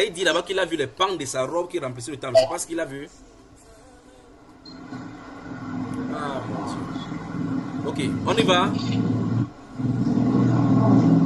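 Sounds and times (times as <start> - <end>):
speech: 0.0 - 3.4, 7.9 - 9.2
car passing near a house with low engine rumble: 3.3 - 11.2.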